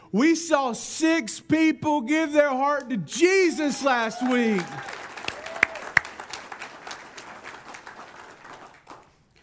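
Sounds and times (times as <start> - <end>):
speech: 0.1 - 5.0
crowd applauding: 3.7 - 9.4.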